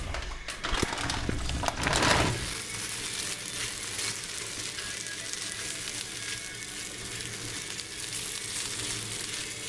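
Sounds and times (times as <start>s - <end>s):
clattering in a pan: 0.0s - 2.5s
potato noodles frying in hot oil in a pan: 1.2s - 9.6s.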